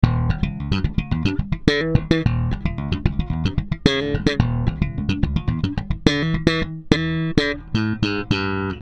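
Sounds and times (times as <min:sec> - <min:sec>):
bass guitar through an equalizer: 0:00.0 - 0:08.8.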